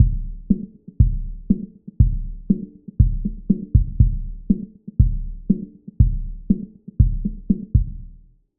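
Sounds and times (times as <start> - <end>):
drum loop low-pass filtered at 250 Hz: 0.0 - 8.2.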